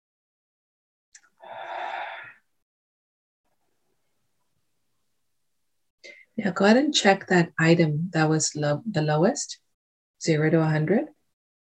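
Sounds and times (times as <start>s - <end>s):
long deep breath during a guided relaxation exercise: 1.4s - 2.5s
speech: 6.4s - 9.6s, 10.2s - 11.2s.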